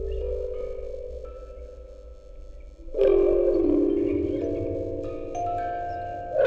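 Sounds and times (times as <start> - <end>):
quartet of music boxes through a vocoder on tape: 0.2 - 6.4.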